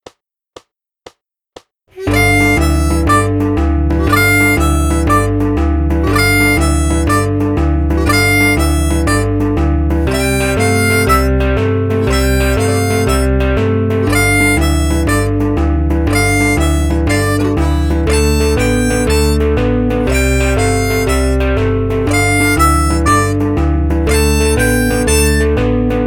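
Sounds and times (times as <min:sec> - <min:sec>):
slide blues music: 0:02.0 - 0:26.0.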